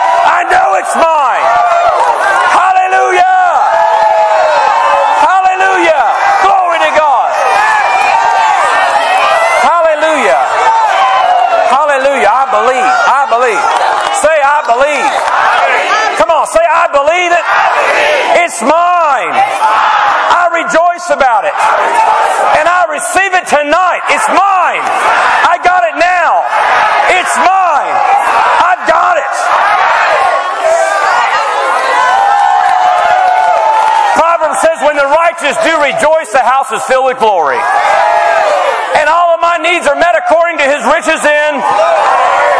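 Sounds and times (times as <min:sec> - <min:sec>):
large audience shouting and cheering: 0:00.0 - 0:42.5
speech: 0:00.8 - 0:01.6, 0:12.5 - 0:20.0, 0:20.6 - 0:28.1, 0:34.8 - 0:37.9, 0:38.9 - 0:42.4.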